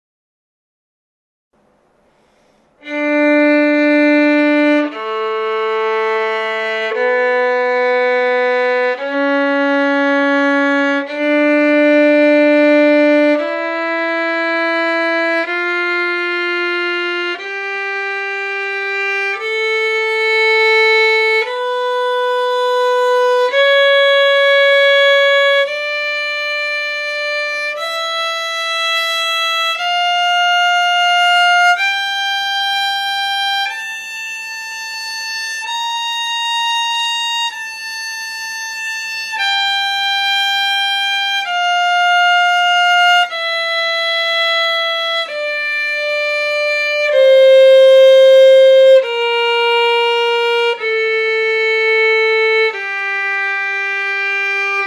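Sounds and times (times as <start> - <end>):
scale arpeggios in D minor: 2.8 - 54.8.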